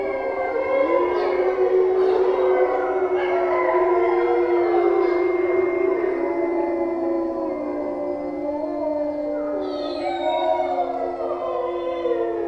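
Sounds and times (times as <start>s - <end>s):
wolf pack howling in the evening in a forest: 0.0s - 12.4s
wolf yips: 9.6s - 11.1s.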